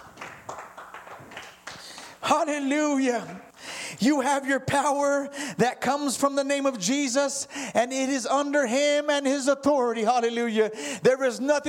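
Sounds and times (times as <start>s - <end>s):
audience applauding: 0.0s - 2.3s
speech: 2.4s - 11.6s.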